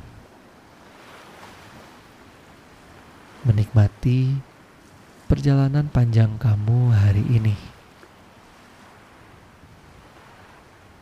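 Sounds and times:
ocean waves breaking and washing against rocks: 0.0 - 11.0
speech: 3.4 - 4.5, 5.3 - 7.7.

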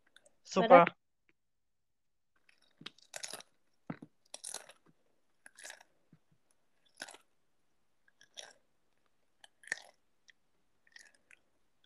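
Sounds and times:
speech: 0.5 - 1.0
crunching and chewing potato chips: 2.4 - 7.4, 8.0 - 11.8.

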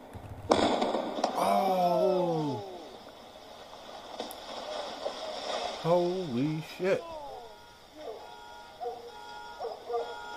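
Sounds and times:
rolling rumble of house explosion: 0.0 - 10.3
house exploding: 0.4 - 3.0
speech: 5.8 - 7.2.

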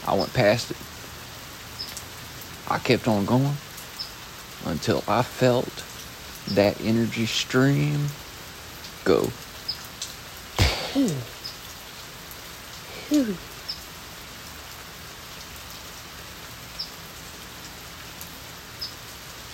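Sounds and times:
steady rain: 0.0 - 19.5
speech: 0.1 - 1.0, 2.7 - 3.7, 4.6 - 5.9, 6.5 - 8.2, 9.0 - 9.4, 11.0 - 11.3, 13.1 - 13.5
drips and thuds: 10.6 - 11.3.

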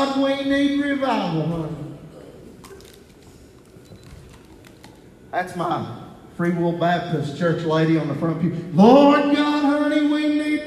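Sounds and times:
speech: 0.0 - 1.9, 5.3 - 10.3
steady low hum: 0.0 - 10.6
plastic water bottle being opened: 2.6 - 5.1.

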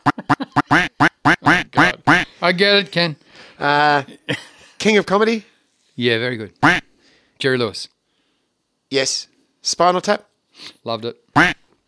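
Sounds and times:
person imitating duck quacks: 0.0 - 2.3, 6.6 - 6.8, 11.4 - 11.6
speech: 2.6 - 6.8, 7.4 - 8.0, 8.9 - 11.6.

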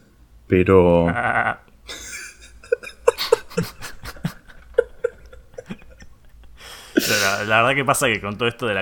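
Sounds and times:
speech: 0.5 - 2.0, 7.4 - 8.7
laughter: 1.9 - 6.4
person sobbing: 1.9 - 7.5.

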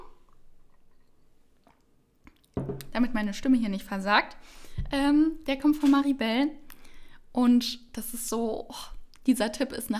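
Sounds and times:
person sipping and swallowing water: 0.1 - 2.6
speech: 2.8 - 6.6, 7.4 - 9.9.

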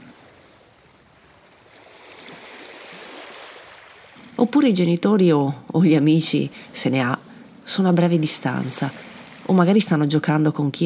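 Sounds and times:
ocean waves washing onto a sandy beach: 0.0 - 4.4, 8.5 - 9.9
speech: 4.4 - 10.8.

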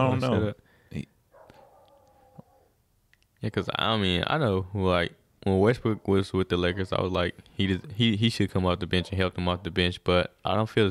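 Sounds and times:
speech: 0.0 - 1.1, 3.4 - 10.9
dog barking: 1.3 - 2.7, 8.9 - 9.3
dog whining: 1.4 - 2.8.

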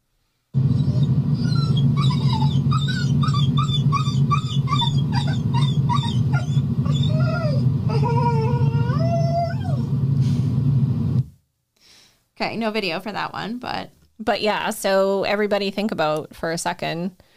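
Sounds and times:
dog whining: 0.6 - 9.9
steady low rumble: 0.6 - 11.3
speech: 12.4 - 17.3.

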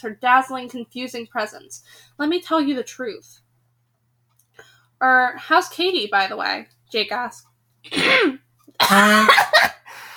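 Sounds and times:
speech: 0.0 - 3.4, 4.6 - 9.8
person clearing throat aggressively: 7.9 - 9.8
rough coughing: 7.9 - 9.9.

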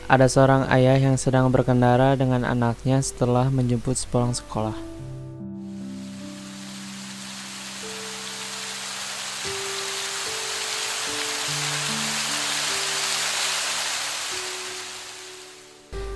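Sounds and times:
soft sustained music notes: 0.0 - 16.1
speech: 0.1 - 4.9
heavy rain falling: 6.0 - 15.8.

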